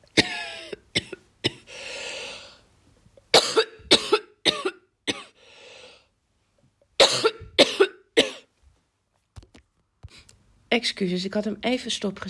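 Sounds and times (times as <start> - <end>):
harsh coughing fit: 0.1 - 1.7, 3.3 - 5.4, 7.0 - 8.5
raspy breaths: 1.6 - 2.7, 5.3 - 6.1
speech: 10.8 - 12.2.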